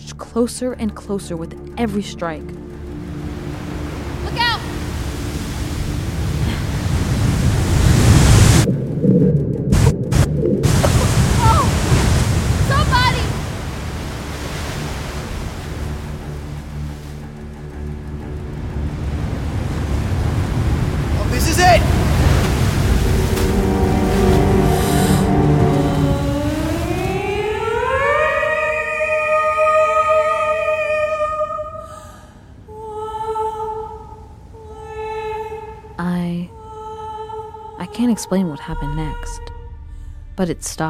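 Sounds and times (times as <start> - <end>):
speech: 0.2 - 2.6, 38.2 - 39.5, 40.4 - 40.8
heavy waves surging and crashing into a sea cave: 2.7 - 8.7, 9.7 - 36.0.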